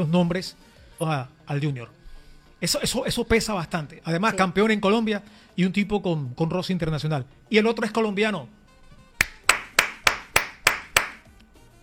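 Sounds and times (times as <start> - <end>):
speech: 0.0 - 2.0, 2.6 - 8.6
hands clapping: 9.2 - 11.4.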